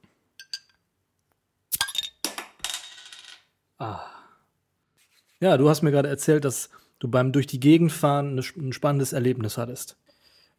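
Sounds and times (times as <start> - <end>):
small 0.33-litre beer can cracked open with sharp pop: 1.7 - 2.1
speech: 3.8 - 4.1, 5.4 - 10.1.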